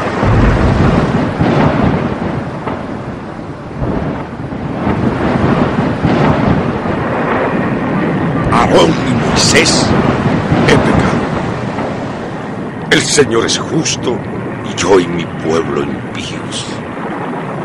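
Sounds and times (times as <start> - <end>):
deep rolling thunder: 0.0 - 13.0
heavy steady rain in a thunderstorm: 0.0 - 17.6
speech: 13.2 - 16.8.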